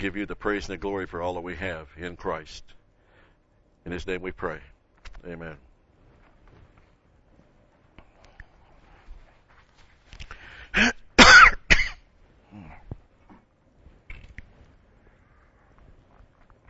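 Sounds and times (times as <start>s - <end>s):
speech: 0.0s - 2.8s, 3.8s - 5.7s
quiet shuffling: 4.8s - 10.6s, 12.1s - 16.6s
soft rustling: 4.9s - 10.6s, 12.1s - 16.6s
person coughing: 10.7s - 12.0s
throat clearing: 10.7s - 13.5s.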